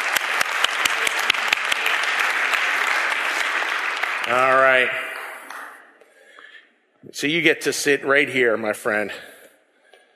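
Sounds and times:
audience clapping for a volunteer: 0.0 - 6.0
speech: 4.3 - 5.0, 7.1 - 9.3.

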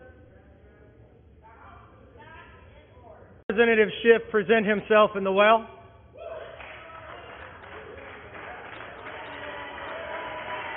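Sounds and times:
speech: 3.5 - 5.8
legislators applauding in the House of Representatives chamber during a censure: 6.4 - 10.7.

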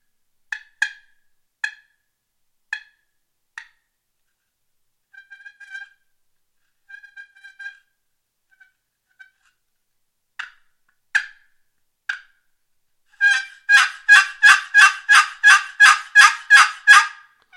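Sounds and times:
turkey call device clucks, purrs and yelps: 13.2 - 17.5.

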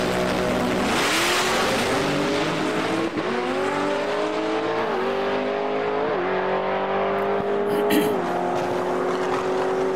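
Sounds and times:
supercharged drag race car with blower roaring down the strip while qualifying: 0.0 - 9.9.

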